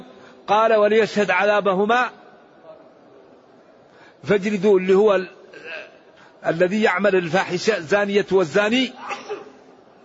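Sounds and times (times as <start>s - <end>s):
speech: 0.5s - 2.2s, 4.2s - 5.8s, 6.4s - 9.1s
sneeze: 9.0s - 9.6s.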